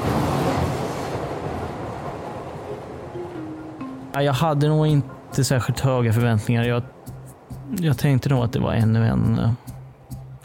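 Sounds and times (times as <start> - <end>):
subway train heading to Kärrtorp rumbling along the tracks: 0.0 - 7.5
speech: 4.2 - 7.0, 7.7 - 9.7.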